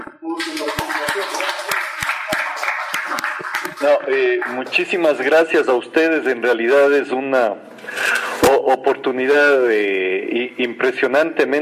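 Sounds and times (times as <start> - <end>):
audience applause: 0.3 - 5.0
speech: 3.8 - 7.7, 8.5 - 11.6.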